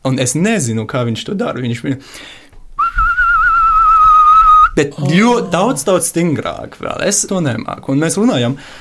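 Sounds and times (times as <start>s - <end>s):
speech: 0.0s - 2.4s, 4.8s - 8.7s
loud whistle with strong fast vibrato: 2.8s - 4.8s.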